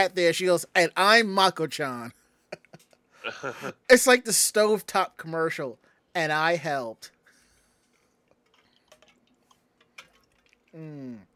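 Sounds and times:
speech: 0:00.0 - 0:02.2, 0:03.2 - 0:07.2, 0:10.8 - 0:11.3
clicks and small wet drips from drinking water: 0:08.3 - 0:10.8
person's loud voiced falling ahh of satisfaction: 0:10.8 - 0:11.3.

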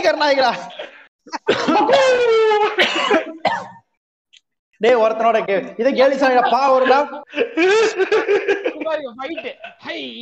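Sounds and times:
speech: 0:00.0 - 0:03.7, 0:04.8 - 0:10.2
person coughing loudly and throatily: 0:00.7 - 0:03.9
laughter: 0:06.2 - 0:10.2.

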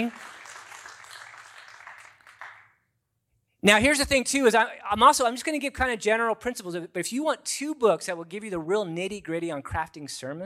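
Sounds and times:
speech: 0:00.0 - 0:00.2, 0:03.6 - 0:10.4
audience applause at a talk on preaching: 0:00.0 - 0:02.7.

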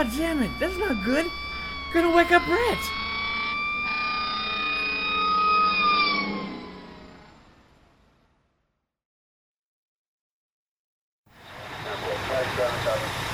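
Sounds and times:
speech: 0:00.0 - 0:03.0
emergency vehicle sirens wailing: 0:00.0 - 0:08.0, 0:11.4 - 0:13.3.

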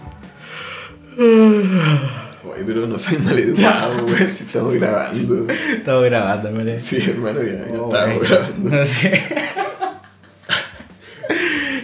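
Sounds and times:
sharp exhale: 0:00.3 - 0:01.0
drawn-out yawn with a falling voiced tone: 0:01.0 - 0:02.4
speech: 0:01.2 - 0:09.6
laughter: 0:03.0 - 0:05.8, 0:08.1 - 0:11.8.

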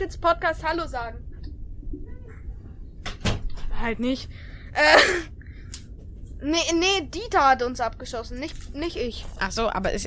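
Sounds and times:
speech: 0:00.0 - 0:01.3, 0:03.8 - 0:05.4, 0:06.4 - 0:10.0
door swinging shut with a rattle and thump: 0:03.0 - 0:03.7.

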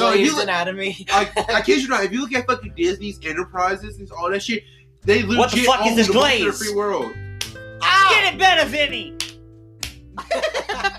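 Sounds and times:
people laughing and giggling: 0:00.0 - 0:00.4, 0:01.1 - 0:01.9, 0:05.2 - 0:06.7, 0:10.2 - 0:10.9
speech: 0:00.1 - 0:07.2, 0:07.8 - 0:09.2
slap of skin on skin: 0:07.4 - 0:07.6, 0:09.2 - 0:10.1.

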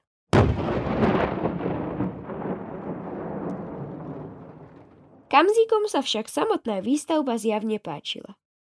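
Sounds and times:
crackle of granite debris: 0:00.4 - 0:05.3
dynamite blast breaking Tatra granite on a mountain hut construction site: 0:00.4 - 0:05.3
speech: 0:05.3 - 0:08.4.

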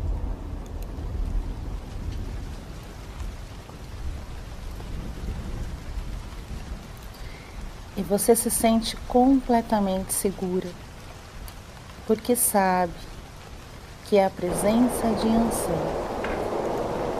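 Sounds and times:
deep rolling thunder: 0:00.0 - 0:06.9, 0:14.4 - 0:17.1
steady rain pouring from an approaching storm: 0:00.0 - 0:17.1
speech: 0:08.0 - 0:10.8, 0:12.1 - 0:13.1, 0:14.1 - 0:16.1.

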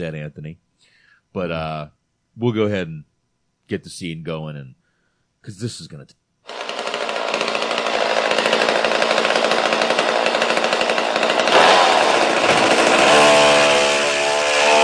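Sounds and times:
speech: 0:00.0 - 0:03.1, 0:03.7 - 0:04.8, 0:05.4 - 0:06.2
chainsaw running: 0:06.5 - 0:14.8.

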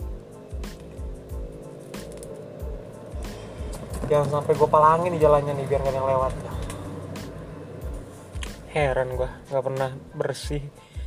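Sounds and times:
motorcycle engine droning outside: 0:00.0 - 0:09.8
speech: 0:04.1 - 0:06.6, 0:08.7 - 0:10.8.

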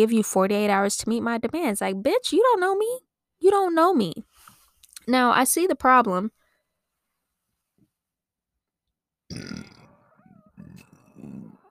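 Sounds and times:
speech: 0:00.0 - 0:04.3, 0:05.0 - 0:06.4, 0:09.3 - 0:09.7
loud drawn-out guttural burp: 0:09.3 - 0:11.6.

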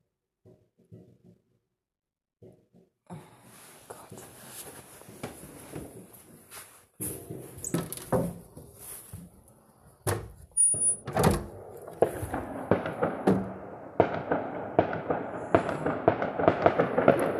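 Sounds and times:
fireworks going off outdoors in a residential neighbourhood: 0:11.6 - 0:17.3.

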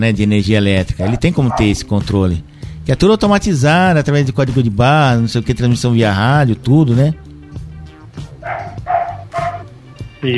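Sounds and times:
speech: 0:00.0 - 0:07.3
small dog barking in a backyard: 0:01.0 - 0:01.8, 0:08.3 - 0:09.7.

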